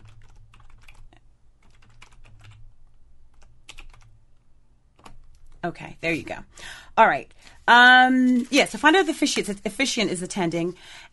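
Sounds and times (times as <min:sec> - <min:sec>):
typing on a computer keyboard: 0:00.0 - 0:02.6, 0:03.3 - 0:04.1, 0:05.0 - 0:05.6
speech: 0:05.6 - 0:11.1.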